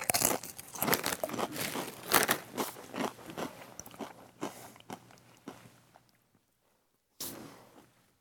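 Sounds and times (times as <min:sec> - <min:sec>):
tangy Doritos chips being bitten and chewed: 0:00.0 - 0:05.5.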